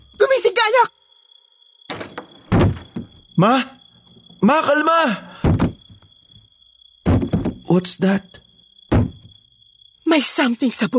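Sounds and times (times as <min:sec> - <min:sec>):
speech: 0:00.7 - 0:01.0, 0:03.4 - 0:03.8, 0:04.4 - 0:05.3, 0:07.7 - 0:08.4, 0:10.1 - 0:10.9
heavy pounding on a bedroom door: 0:05.4 - 0:05.9, 0:07.0 - 0:07.7, 0:08.9 - 0:09.4.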